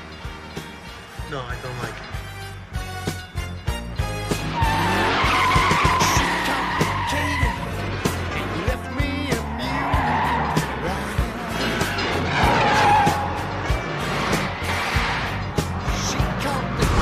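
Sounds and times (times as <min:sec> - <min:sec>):
car with 440 cubic inch police engine roaring while accelerating hard: 0:00.0 - 0:17.0
police tires squealing and skidding: 0:00.0 - 0:17.0
speech: 0:01.3 - 0:02.2.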